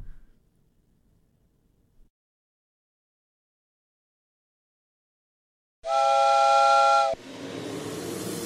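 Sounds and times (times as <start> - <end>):
steam train whistle: 5.8 - 7.2.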